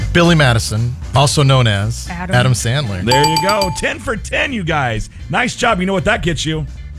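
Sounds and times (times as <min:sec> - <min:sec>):
speech: 0:00.1 - 0:06.8
bell ringing with a bright sustained metallic tone: 0:03.1 - 0:04.0.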